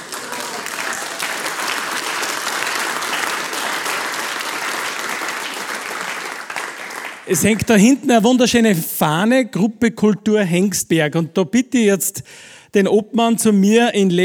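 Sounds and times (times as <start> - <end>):
audience applauding: 0.0 - 8.0
speech: 7.3 - 14.2.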